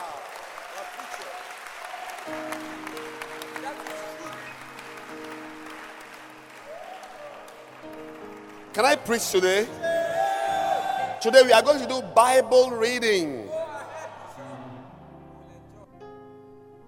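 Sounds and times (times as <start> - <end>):
audience applause: 0.0 - 11.6
speech: 2.3 - 2.7, 8.8 - 9.9, 11.2 - 13.5.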